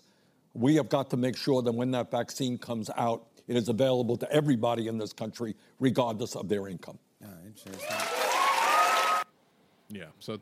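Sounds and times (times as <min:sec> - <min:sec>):
speech: 0:00.6 - 0:08.1, 0:09.9 - 0:10.4
live studio audience applauding: 0:07.6 - 0:09.3
studio audience cheering: 0:07.6 - 0:09.3.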